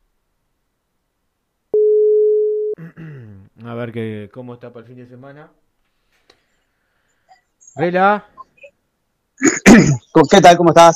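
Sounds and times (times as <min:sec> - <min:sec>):
telephone call ringing tone: 0:01.8 - 0:02.8
speech: 0:03.6 - 0:05.6, 0:07.8 - 0:08.4, 0:09.7 - 0:10.9.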